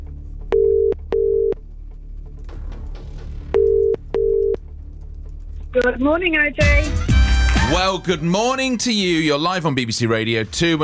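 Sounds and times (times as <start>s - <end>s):
telephone ringing tone on the line: 0.6s - 1.6s, 3.6s - 4.6s
speech: 5.8s - 7.0s, 7.7s - 10.8s.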